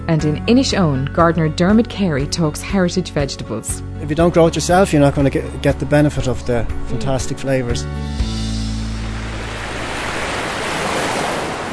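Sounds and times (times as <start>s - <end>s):
speech: 0.1s - 8.3s
surf breaking along a rocky shore on the coast of Donegal: 8.9s - 11.7s.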